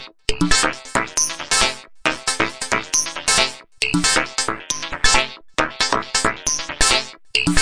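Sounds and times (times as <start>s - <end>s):
echoey techno groove: 0.4s - 7.5s.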